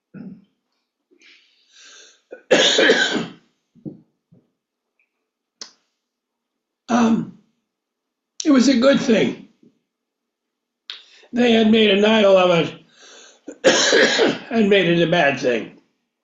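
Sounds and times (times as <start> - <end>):
person clearing throat: 0.1 - 0.5, 2.3 - 3.4, 6.9 - 7.4, 13.5 - 14.5
person coughing: 2.3 - 3.4, 13.5 - 14.5
speech: 8.6 - 9.4, 11.4 - 12.8, 13.6 - 15.8.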